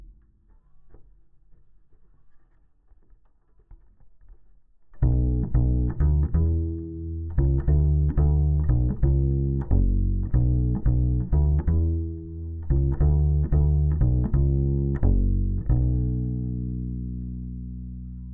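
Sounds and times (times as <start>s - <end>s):
direct input bass guitar: 5.0s - 18.3s.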